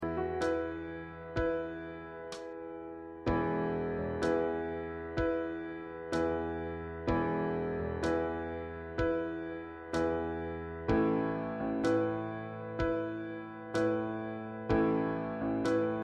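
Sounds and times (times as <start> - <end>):
piano: 0.0 - 16.0.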